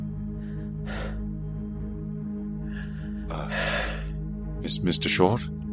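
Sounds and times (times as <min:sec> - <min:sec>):
heavy ragged breathing: 0:00.1 - 0:01.9, 0:02.5 - 0:04.3
speech: 0:04.6 - 0:05.6.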